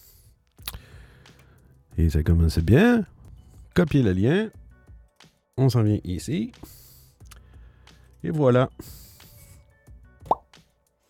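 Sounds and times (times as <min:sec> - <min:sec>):
speech: 0:02.0 - 0:03.2, 0:03.8 - 0:04.6, 0:05.6 - 0:06.8, 0:08.2 - 0:09.0
wet hollow suction cup pop: 0:10.2 - 0:10.5.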